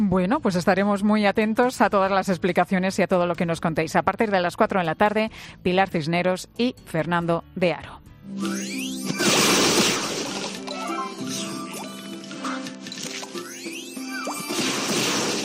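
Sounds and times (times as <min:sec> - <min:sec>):
speech: 0:00.0 - 0:09.5
Candy Crush video game sound effects: 0:08.4 - 0:15.4.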